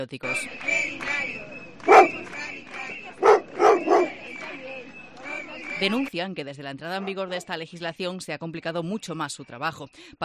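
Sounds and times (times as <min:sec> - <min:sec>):
speech: 0:00.0 - 0:03.2, 0:04.5 - 0:10.2
murmur of a protesting crowd outside the Government delegation in Galicia: 0:00.2 - 0:07.6
dog barking at a street protest: 0:01.8 - 0:02.2, 0:03.2 - 0:04.2.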